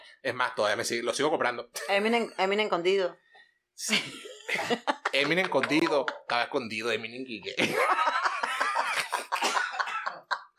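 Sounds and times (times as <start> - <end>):
speech: 0.2 - 3.2, 3.8 - 8.0
laughter: 3.9 - 6.7, 7.5 - 10.5
person coughing: 9.3 - 10.3.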